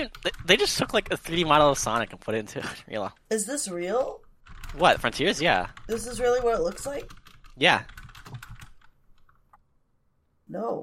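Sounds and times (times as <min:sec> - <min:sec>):
typing on a computer keyboard: 0:00.0 - 0:02.4, 0:04.0 - 0:09.5
speech: 0:00.0 - 0:08.0, 0:10.5 - 0:10.8.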